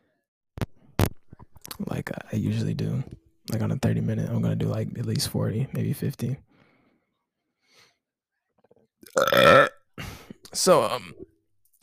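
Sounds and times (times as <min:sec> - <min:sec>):
speech: 0:01.8 - 0:06.5, 0:09.2 - 0:09.7, 0:10.5 - 0:11.3
loud voiced burps: 0:09.0 - 0:09.9.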